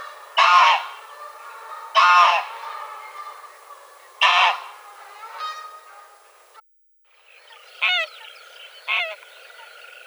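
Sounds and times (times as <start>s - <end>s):
greylag goose honks: 0.0s - 3.4s, 4.2s - 6.2s.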